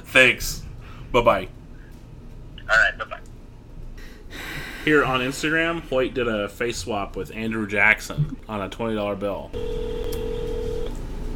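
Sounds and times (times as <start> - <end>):
speech: 0.1 - 1.6, 4.8 - 10.4
steady electronic phone ringing tone: 9.6 - 11.0.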